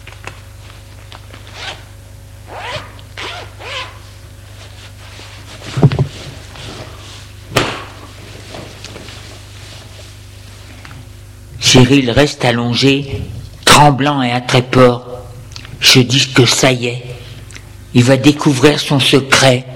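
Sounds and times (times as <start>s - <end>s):
clothing zipper drawn while someone undresses: 2.5s - 4.0s
speech: 11.7s - 15.1s, 15.8s - 17.1s, 18.0s - 19.7s.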